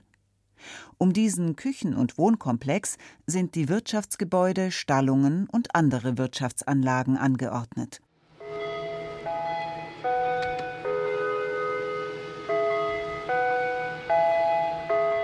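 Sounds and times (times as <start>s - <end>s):
speech: 0.8s - 8.1s
chime gong ringing a melody: 8.4s - 15.2s.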